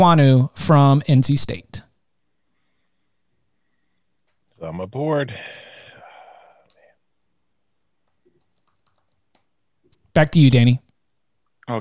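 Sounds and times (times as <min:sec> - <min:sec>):
speech: 0:00.0 - 0:01.8, 0:04.6 - 0:05.7, 0:10.2 - 0:10.8
breathy exhale: 0:05.3 - 0:06.9
typing on a computer keyboard: 0:08.0 - 0:09.5.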